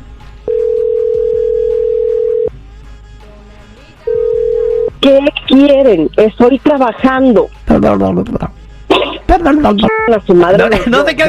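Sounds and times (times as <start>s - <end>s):
ringback tone on a phone call being placed: 0.5s - 2.5s, 4.1s - 5.0s
speech: 5.0s - 8.6s, 9.4s - 11.2s.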